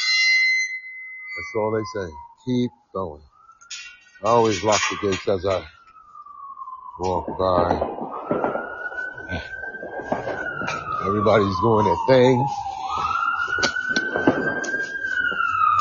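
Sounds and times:
emergency vehicle siren wailing: 0:00.0 - 0:15.7
street noise: 0:01.2 - 0:15.7
speech: 0:01.4 - 0:03.3, 0:04.2 - 0:05.8, 0:07.0 - 0:08.5, 0:09.3 - 0:09.6, 0:11.0 - 0:13.1.

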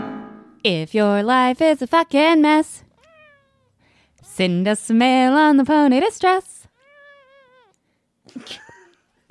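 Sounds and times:
speech: 0:00.7 - 0:02.9, 0:04.4 - 0:06.5, 0:08.3 - 0:08.7
cat meowing: 0:02.9 - 0:03.8, 0:06.7 - 0:07.8.

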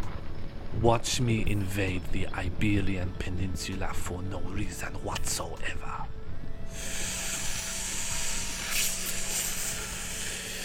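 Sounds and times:
speech: 0:00.8 - 0:07.1
person sucking on a vape: 0:06.7 - 0:10.6.

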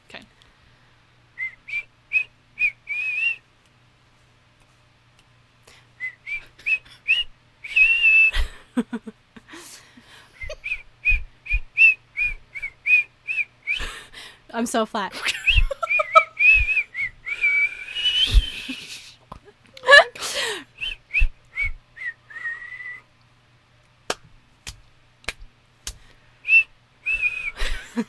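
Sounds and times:
person whistling a tune: 0:01.4 - 0:03.4, 0:06.0 - 0:08.5, 0:10.4 - 0:14.0, 0:15.5 - 0:19.0, 0:20.8 - 0:23.1, 0:26.4 - 0:27.8
speech: 0:14.6 - 0:15.4.

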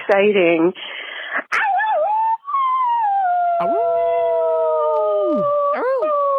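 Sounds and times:
speech: 0:00.1 - 0:01.6
dog howling: 0:02.7 - 0:06.2.

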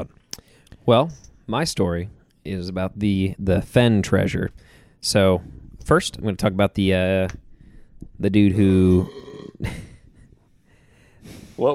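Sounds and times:
speech: 0:00.8 - 0:07.4, 0:08.2 - 0:09.9, 0:11.3 - 0:11.7
man burping: 0:08.8 - 0:09.9.

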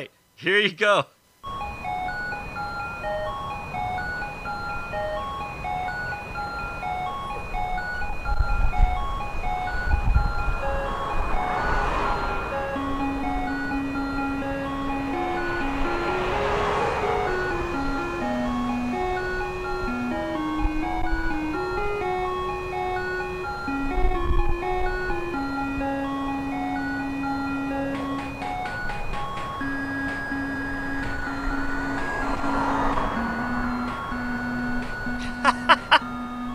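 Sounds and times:
speech: 0:00.0 - 0:01.2
ice cream truck jingle: 0:01.4 - 0:36.5
low vehicle rumble: 0:01.4 - 0:36.5
whooshes of passing noise: 0:09.8 - 0:19.6, 0:30.6 - 0:35.2
laughter: 0:35.2 - 0:36.1.

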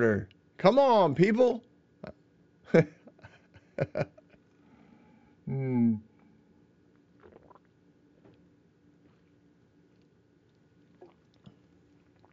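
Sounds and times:
speech: 0:00.0 - 0:03.0, 0:03.8 - 0:04.2, 0:05.5 - 0:06.1
person drinking and swallowing water: 0:07.1 - 0:08.4, 0:10.0 - 0:12.3
mouth and throat noises: 0:07.2 - 0:07.7, 0:10.0 - 0:12.3.

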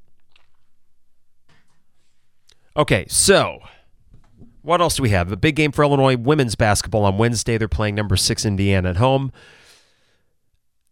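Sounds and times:
sipping and slurping from a drink: 0:00.1 - 0:00.8
speech: 0:02.8 - 0:03.8, 0:04.6 - 0:09.6.

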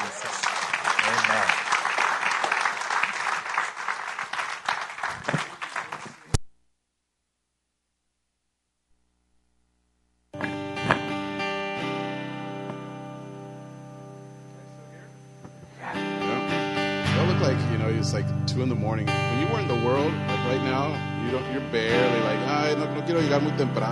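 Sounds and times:
audience applauding: 0:00.0 - 0:06.3
sustained musical tone: 0:11.0 - 0:23.9
speech: 0:18.6 - 0:23.9.

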